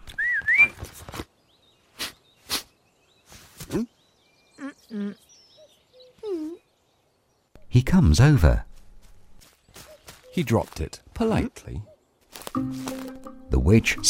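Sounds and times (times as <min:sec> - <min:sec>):
rising whistled tone: 0:00.1 - 0:00.8
speech: 0:03.7 - 0:04.0, 0:07.8 - 0:08.7, 0:10.4 - 0:11.9, 0:12.6 - 0:12.9, 0:13.6 - 0:14.0.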